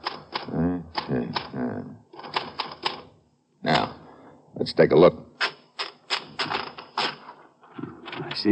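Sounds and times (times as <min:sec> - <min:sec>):
manual typewriter keystrokes typing on paper: 0:00.0 - 0:01.6, 0:02.2 - 0:03.1, 0:05.4 - 0:07.4
speech: 0:04.6 - 0:05.3.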